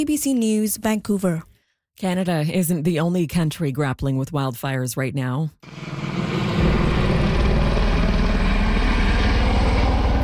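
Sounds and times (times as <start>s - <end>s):
speech: 0.0s - 6.0s
helicopter rotor thumping while dropping water on wildfire: 5.7s - 10.2s.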